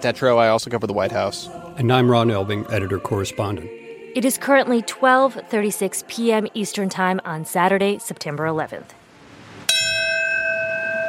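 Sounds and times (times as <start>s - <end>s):
speech: 0.0s - 9.0s
memorial bell tolling: 9.7s - 11.0s.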